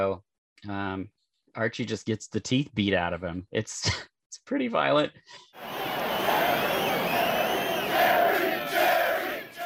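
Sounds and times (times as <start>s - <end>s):
speech: 0.0s - 5.8s
large crowd cheering in the stands: 5.6s - 9.6s
laughter: 5.6s - 9.6s.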